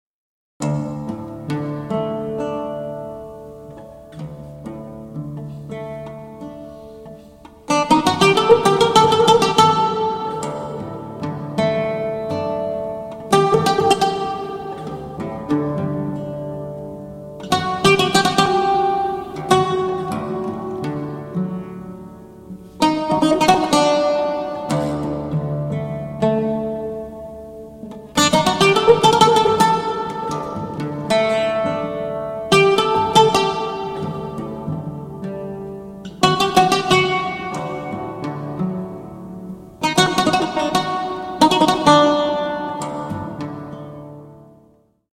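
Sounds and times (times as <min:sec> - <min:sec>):
Arabic oud solo improvisation: 0:00.6 - 0:45.1.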